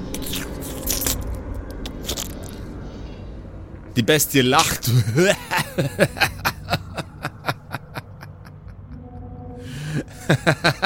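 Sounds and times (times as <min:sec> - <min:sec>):
constant low rumble: 0:00.0 - 0:10.8
slimy gruesome squelching and crunching of creatures merging: 0:00.1 - 0:02.6
speech: 0:04.0 - 0:06.4, 0:10.3 - 0:10.8
laughter: 0:04.9 - 0:09.0, 0:10.0 - 0:10.8.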